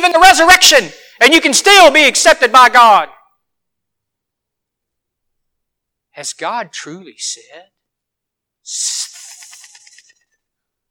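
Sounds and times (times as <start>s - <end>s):
speech: 0.0s - 3.2s, 6.2s - 7.8s, 8.7s - 9.1s
voice imitating the hiss of a snake: 8.6s - 10.2s.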